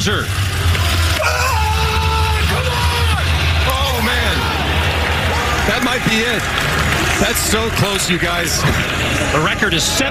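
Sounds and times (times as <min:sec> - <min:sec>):
speech: 0:00.0 - 0:00.4, 0:05.7 - 0:10.0
low rumble: 0:00.0 - 0:10.0
man screaming while throwing shot put: 0:01.0 - 0:04.8.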